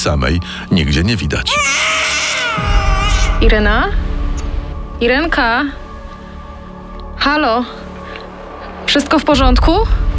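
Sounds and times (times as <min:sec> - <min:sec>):
speech: 0:00.0 - 0:02.8, 0:03.4 - 0:04.1, 0:05.0 - 0:05.8, 0:07.2 - 0:07.8, 0:08.9 - 0:10.0
infant crying: 0:01.5 - 0:04.0.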